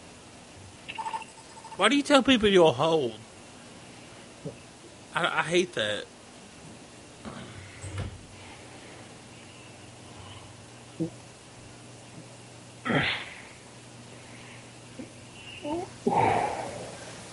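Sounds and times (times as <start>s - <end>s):
faint steady hum: 0.0s - 17.3s
speech: 1.8s - 3.2s, 5.2s - 6.1s, 11.0s - 11.2s
heavy breathing while smoking a cigarette: 7.3s - 10.6s, 13.0s - 17.2s.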